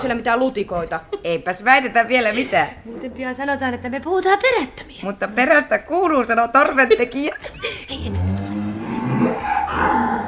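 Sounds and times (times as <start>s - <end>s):
speech: 0.0s - 8.2s
laughter: 6.6s - 8.4s
dairy cattle lowing in a cow barn: 8.0s - 10.2s.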